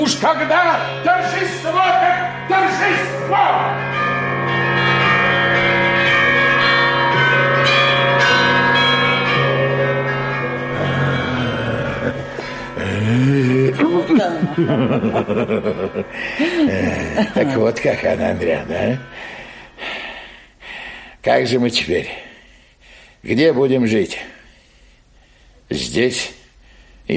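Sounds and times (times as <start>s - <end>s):
speech: 0.0s - 4.2s, 14.0s - 20.0s, 21.2s - 22.3s, 23.2s - 24.4s, 25.7s - 26.4s
church bells pealing in celebration: 0.0s - 20.2s
people laughing and chuckling: 11.4s - 19.0s.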